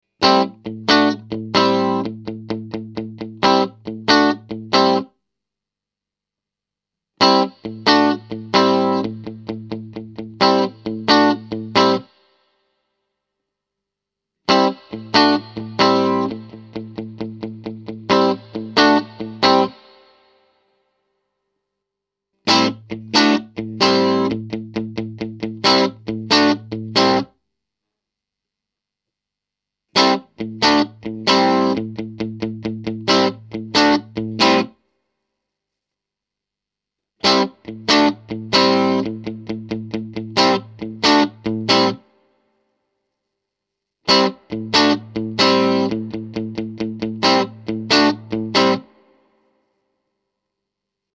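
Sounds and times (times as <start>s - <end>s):
Fender guitar amp reverb: 0.2s - 5.0s, 7.2s - 12.0s, 14.5s - 20.2s, 22.5s - 27.3s, 30.0s - 34.7s, 37.2s - 42.0s, 44.1s - 49.1s.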